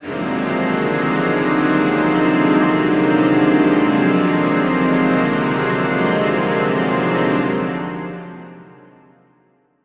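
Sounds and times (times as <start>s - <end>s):
suspenseful horror strings: 0.0s - 8.4s.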